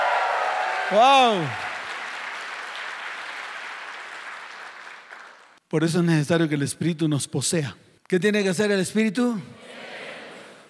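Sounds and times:
audience clapping: 0.0 - 5.6
speech: 0.9 - 1.7, 5.7 - 9.9.

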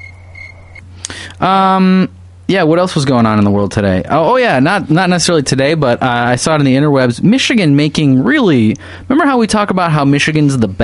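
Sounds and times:
cricket chirping: 0.0 - 0.8
low hum: 0.0 - 10.8
speech: 1.4 - 10.8.

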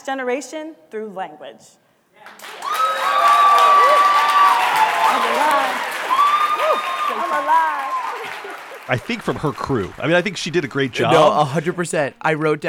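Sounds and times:
speech: 0.0 - 2.4, 8.4 - 12.6
loud applause from a large audience: 2.3 - 11.0
enthusiastic cheers and whoops: 2.5 - 8.8
people shouting: 2.7 - 8.2.

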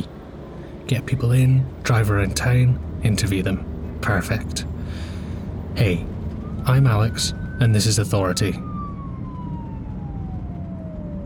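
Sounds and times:
steady rumble of street traffic: 0.0 - 11.2
speech: 0.9 - 5.1, 5.8 - 8.7
emergency vehicle siren passing on street: 3.8 - 11.2.

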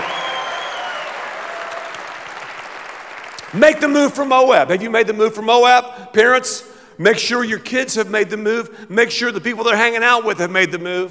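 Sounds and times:
light polite applause from a small crowd: 0.0 - 3.6
speech: 3.5 - 11.0.

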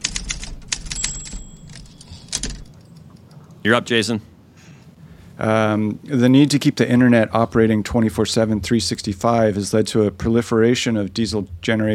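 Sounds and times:
typewriter typing: 0.0 - 2.9
speech: 3.6 - 4.3, 5.4 - 11.9.

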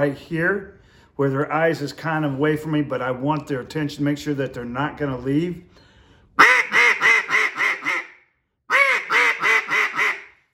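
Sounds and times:
speech: 0.0 - 5.8
excited hen duck quacks sounded on a duck call: 6.4 - 10.5.

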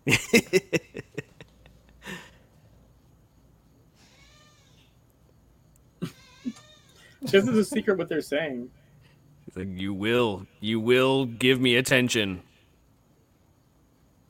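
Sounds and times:
laughter: 0.0 - 2.4, 7.2 - 8.0
speech: 0.1 - 0.7, 7.3 - 8.8, 9.6 - 12.5
cat meowing: 4.0 - 4.9, 6.0 - 7.2.

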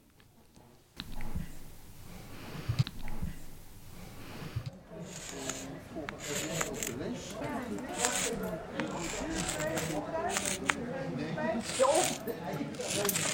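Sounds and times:
voices murmuring: 0.4 - 13.3
chalk scraping and scratching across a hard surface while writing: 2.1 - 10.8, 11.5 - 13.3.

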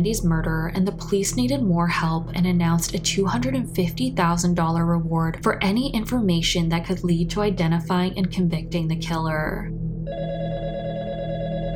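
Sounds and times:
speech: 0.0 - 9.8
telephone ringing with an electronic trill: 10.1 - 11.7.

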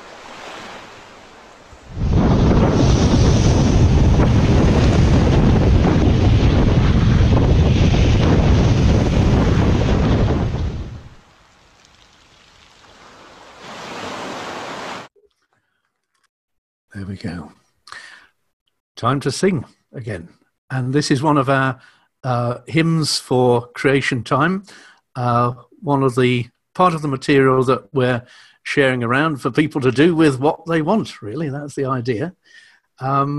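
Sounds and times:
sea waves washing up the shore over feet: 0.0 - 15.1
speech: 19.0 - 33.3.

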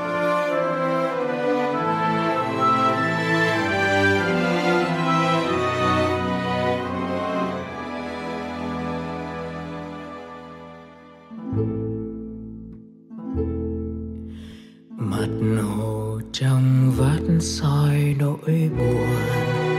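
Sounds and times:
instrumental song intro with rich sustained tones: 0.0 - 19.7.

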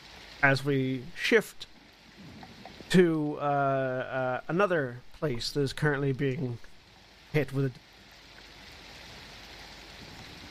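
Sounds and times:
steady rain: 0.0 - 10.4
speech: 0.4 - 2.3, 2.9 - 6.7, 7.3 - 7.9.

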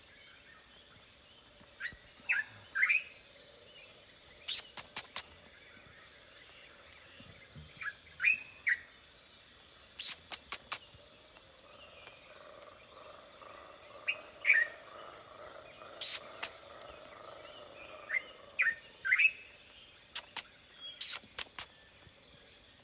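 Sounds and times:
birds chirping and whistling in a rainforest: 0.9 - 9.0, 9.9 - 11.2, 11.8 - 22.8
sharp clicking snaps: 4.5 - 5.4, 10.0 - 12.2, 16.0 - 17.2, 20.1 - 21.8.

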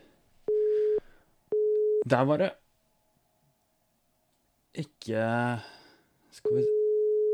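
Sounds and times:
electronic phone-line ringing tone beeps: 0.5 - 2.1, 6.5 - 7.3
speech: 2.0 - 2.6, 4.8 - 6.8.

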